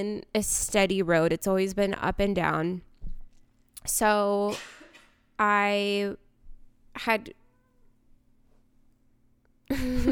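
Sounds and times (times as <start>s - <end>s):
speech: 0.0s - 2.9s, 3.8s - 4.8s, 5.4s - 6.2s, 7.0s - 7.4s, 9.7s - 10.1s
cat meowing faintly on a person's lap: 7.4s - 8.0s.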